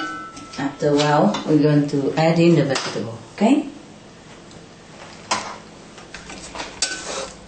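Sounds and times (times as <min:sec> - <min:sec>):
speech: 0:00.6 - 0:03.8
utensil scraping a pan while stirring vegan sausage with tofu: 0:06.3 - 0:07.4.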